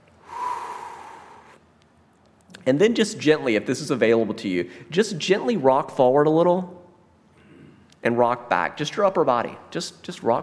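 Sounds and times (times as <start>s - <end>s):
deep breath in and out: 0.2s - 1.6s
speech: 2.6s - 6.8s, 8.0s - 10.4s.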